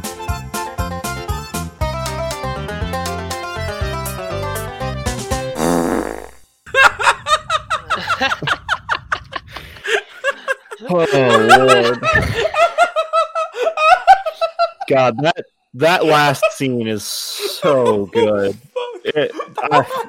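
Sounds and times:
comedic song built from fart sound effects: 0.0 - 1.7, 3.2 - 6.5
snickering and giggling: 6.7 - 14.9, 17.4 - 20.0
speech: 11.0 - 12.5, 14.9 - 20.0.

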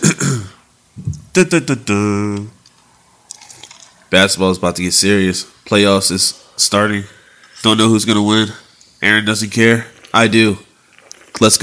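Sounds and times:
throat clearing and coughing from a very dry throat: 0.0 - 0.6
speech: 1.4 - 2.6, 4.1 - 10.6, 11.4 - 11.6.

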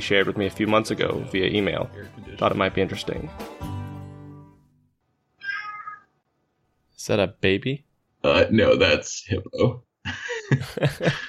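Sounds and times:
speech: 0.0 - 3.8, 7.0 - 11.2
male cat meowing in an apartment: 5.4 - 6.2
laughter: 10.1 - 11.2.

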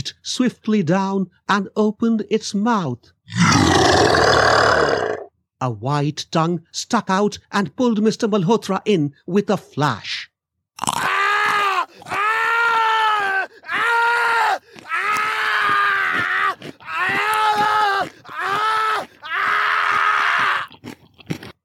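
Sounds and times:
speech: 0.1 - 4.2, 4.8 - 10.2
loud anguished screams and strained guttural cries: 3.3 - 5.3, 10.8 - 20.8
crunching bone-crushing noises: 10.8 - 21.6.

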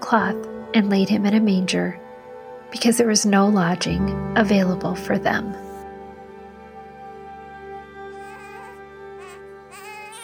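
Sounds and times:
steady sustained musical drone: 0.0 - 9.9
speech: 0.1 - 2.0, 2.7 - 5.6
newborn baby crying: 8.0 - 10.2.

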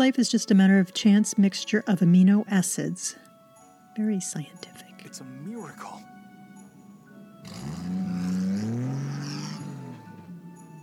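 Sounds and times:
speech: 0.0 - 3.3, 4.0 - 6.2
heavy truck rumbling past: 7.2 - 10.8.

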